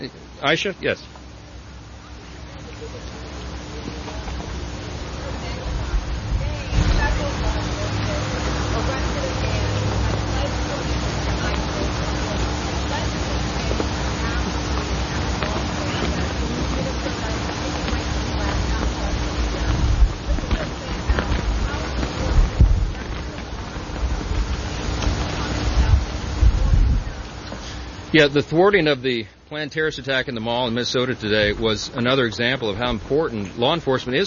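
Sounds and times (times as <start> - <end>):
speech: 0.0 - 1.2, 28.2 - 34.2
faint indistinct voices murmuring: 0.0 - 34.2
wind rumbling across an outdoor microphone: 4.2 - 28.1.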